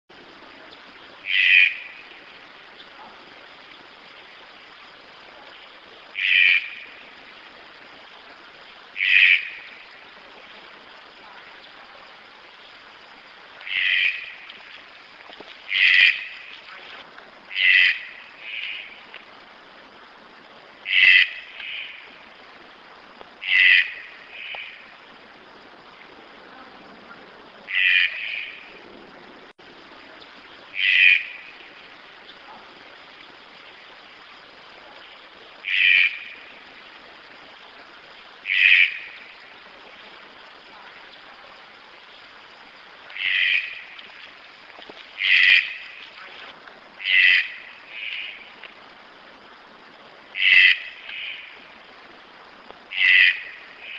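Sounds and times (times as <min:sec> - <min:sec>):
yellow-throated toucan calling: 0:01.2 - 0:02.0, 0:06.2 - 0:06.9, 0:09.0 - 0:09.7, 0:13.6 - 0:14.4, 0:15.7 - 0:16.5, 0:17.5 - 0:19.0, 0:20.9 - 0:22.0, 0:23.4 - 0:24.8, 0:27.7 - 0:28.6, 0:30.8 - 0:31.4, 0:35.6 - 0:36.4, 0:38.5 - 0:39.2, 0:43.1 - 0:43.9, 0:45.2 - 0:46.0, 0:47.0 - 0:48.4, 0:50.4 - 0:51.6, 0:52.9 - 0:53.9.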